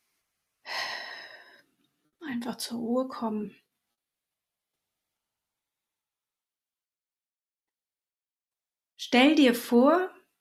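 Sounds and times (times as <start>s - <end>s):
deep breath in slow relaxed breathing: 0.6s - 1.7s
speech: 2.4s - 3.6s, 9.1s - 10.2s.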